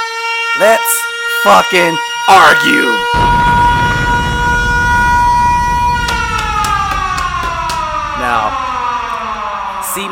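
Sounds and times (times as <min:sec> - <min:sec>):
siren wailing: 0:00.0 - 0:10.1
speech: 0:00.6 - 0:03.5
low rumbling noise: 0:03.1 - 0:10.1.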